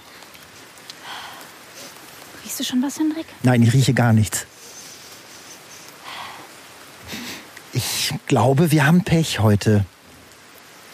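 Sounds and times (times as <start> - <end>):
rain falling outdoors: 0.0 - 10.9
speech: 2.6 - 4.5, 8.3 - 10.0.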